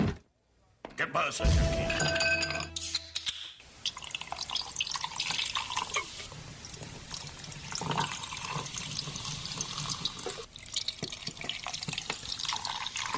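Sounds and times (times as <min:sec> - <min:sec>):
speech: 0:01.0 - 0:02.6
glass clinks: 0:01.9 - 0:02.8
beer pouring into a glass: 0:03.9 - 0:06.0, 0:06.8 - 0:13.1.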